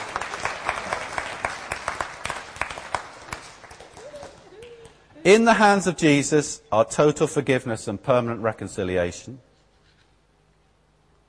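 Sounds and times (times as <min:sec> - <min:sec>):
crowd applauding: 0:00.0 - 0:05.0
speech: 0:05.2 - 0:09.5.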